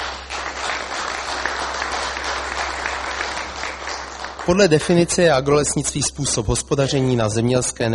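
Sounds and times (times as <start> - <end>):
audience clapping: 0.0 - 5.9
speech: 4.5 - 7.9.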